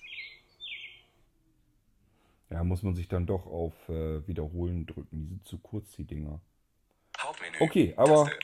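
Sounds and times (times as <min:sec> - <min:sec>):
robin singing: 0:00.0 - 0:01.2
speech: 0:02.5 - 0:06.5, 0:07.6 - 0:08.4.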